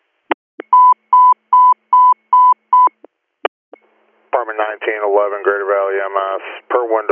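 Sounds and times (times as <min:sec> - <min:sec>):
telephone touch-tone dialing beeps: 0:00.6 - 0:03.0
speech: 0:04.4 - 0:07.0.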